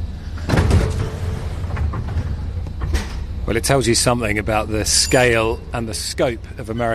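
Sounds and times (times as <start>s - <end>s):
low mechanical rumble of an underground train: 0.0s - 6.9s
underground train carriage hum: 0.0s - 6.9s
underground train doors sliding shut: 0.3s - 3.4s
speech: 3.5s - 6.9s.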